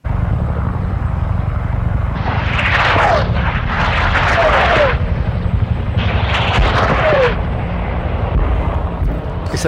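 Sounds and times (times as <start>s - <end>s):
low rumble: 0.0s - 9.6s
rockets being fired: 1.8s - 9.3s.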